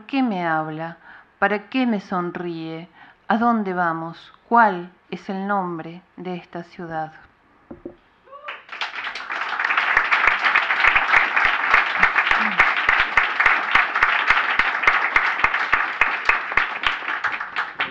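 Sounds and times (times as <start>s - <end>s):
speech: 0.1s - 8.0s
audience applauding: 8.3s - 17.8s.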